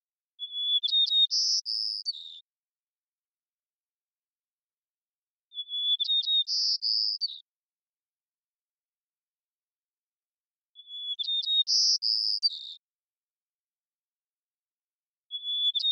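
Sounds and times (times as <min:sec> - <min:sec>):
white-crowned sparrow Zonotrichia leucophrys singing in Washington, United States: 0:00.4 - 0:02.5, 0:05.5 - 0:07.5, 0:10.8 - 0:12.9, 0:15.3 - 0:15.9.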